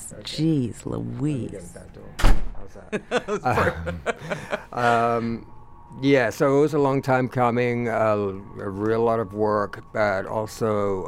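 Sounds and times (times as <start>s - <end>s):
speech: 0.2s - 11.0s
door thudding shut: 2.2s - 2.6s
people chuckling: 2.8s - 5.4s.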